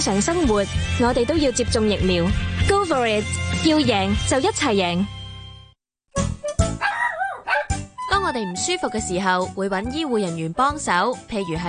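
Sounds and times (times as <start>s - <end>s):
speech: 0.0s - 5.2s, 8.4s - 11.6s
dog barking: 6.8s - 7.8s.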